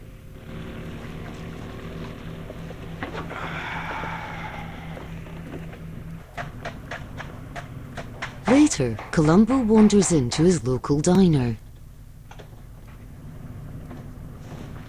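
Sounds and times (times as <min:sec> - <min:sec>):
boat engine drone on the water: 0:00.0 - 0:14.8
speech: 0:08.6 - 0:11.6.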